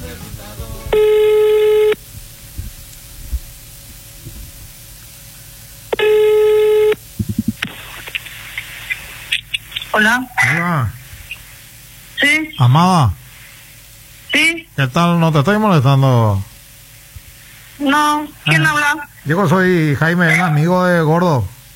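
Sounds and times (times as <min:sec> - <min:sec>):
telephone ringback tone on an outgoing call: 0:00.9 - 0:02.0, 0:06.0 - 0:07.0
phone clicks and handling noise: 0:07.2 - 0:10.0
speech: 0:10.0 - 0:11.0, 0:12.2 - 0:13.2, 0:14.3 - 0:16.5, 0:17.8 - 0:21.6.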